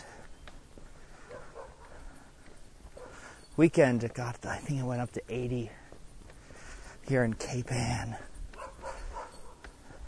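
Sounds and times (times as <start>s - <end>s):
steady outdoor noise: 0.0s - 10.0s
faint dogs barking during a walk in Cape Ann: 1.0s - 3.5s, 8.5s - 10.0s
speech: 3.6s - 5.8s, 7.1s - 8.3s.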